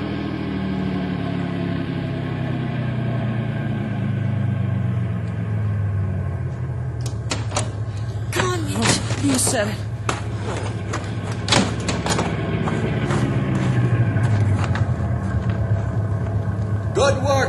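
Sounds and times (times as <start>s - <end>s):
car engine rumbling as the car slows to a stop: 0.0s - 17.4s
car doors opening with clunks and clicks: 7.1s - 13.5s
speech: 9.5s - 9.9s.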